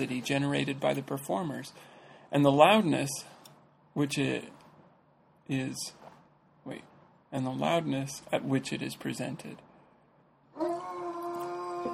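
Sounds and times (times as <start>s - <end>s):
speech: 0.0s - 3.4s, 4.0s - 4.6s, 5.5s - 6.0s, 6.6s - 9.6s
neighbor's dog howling outside: 10.6s - 11.9s.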